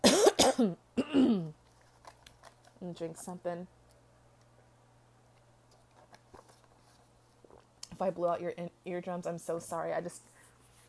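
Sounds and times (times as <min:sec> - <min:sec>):
person coughing with a rasping throaty cough: 0:00.0 - 0:01.6
speech: 0:00.6 - 0:00.8, 0:02.8 - 0:03.8, 0:08.0 - 0:10.3.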